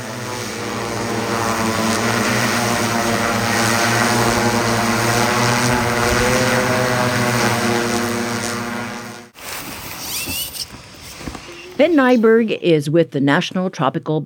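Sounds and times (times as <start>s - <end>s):
drone propellers whirring in flight: 0.0s - 9.4s
outdoor rustling: 0.0s - 13.8s
speech: 12.0s - 14.2s.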